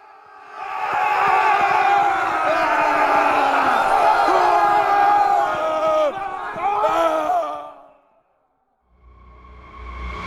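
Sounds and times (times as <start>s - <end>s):
crowd yelling battlefield war cries: 0.0s - 8.2s.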